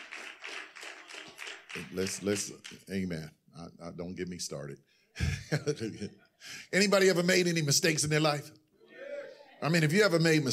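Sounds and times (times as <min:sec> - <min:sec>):
audience clapping: 0:00.0 - 0:03.2
speech: 0:01.8 - 0:08.6, 0:09.6 - 0:10.5.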